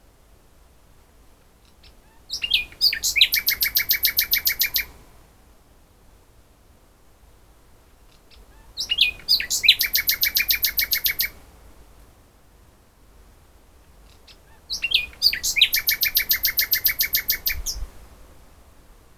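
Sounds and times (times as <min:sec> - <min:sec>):
Common nightingale Luscinia megarhynchos song: 0:01.6 - 0:05.0, 0:08.0 - 0:11.4, 0:13.9 - 0:18.6.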